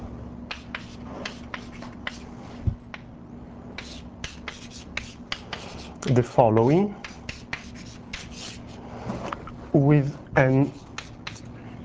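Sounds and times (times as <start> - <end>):
soft scratching and rubbing of an equation being written: 0.5 - 2.3, 3.8 - 8.8, 10.4 - 11.5
speech: 6.1 - 7.0, 9.8 - 10.8.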